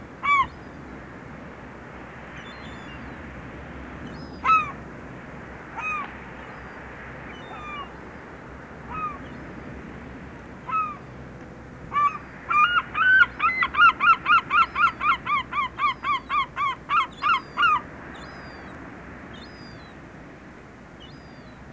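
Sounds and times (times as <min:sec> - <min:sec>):
sea birds seagulls calling: 0:00.2 - 0:00.8, 0:04.2 - 0:04.8, 0:05.7 - 0:08.0, 0:08.8 - 0:09.8, 0:10.6 - 0:11.2, 0:11.9 - 0:18.7.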